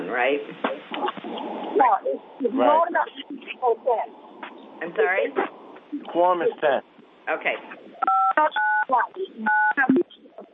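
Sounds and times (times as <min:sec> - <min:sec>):
speech: 0:00.2 - 0:04.2, 0:04.8 - 0:10.0
telephone keypad DTMF tones: 0:08.0 - 0:08.9, 0:09.5 - 0:09.8.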